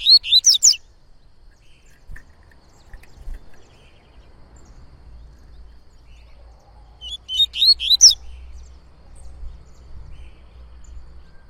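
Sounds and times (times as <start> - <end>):
coleiro-baiano singing tui-tui song: 0.0 - 0.9, 6.9 - 8.4.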